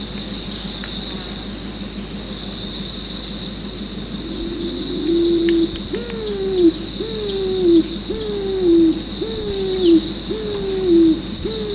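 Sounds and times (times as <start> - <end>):
steady high background hum: 0.0 - 11.7
pigeon calling with clear, hooting coos: 4.1 - 11.7.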